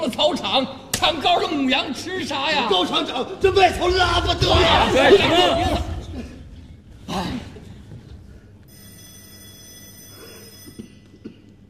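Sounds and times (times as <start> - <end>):
speech: 0.0 - 5.9
electronic telephone ringing in a factory office: 8.7 - 11.0.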